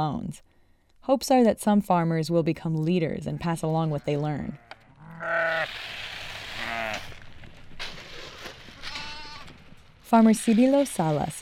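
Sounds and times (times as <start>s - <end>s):
speech: 0.0s - 4.6s, 5.2s - 5.9s, 10.1s - 11.4s
flock of sheep bleating at feeding time: 3.3s - 5.7s, 6.5s - 7.2s, 8.8s - 9.5s
rustling and shuffling movement of sheep: 7.0s - 11.4s.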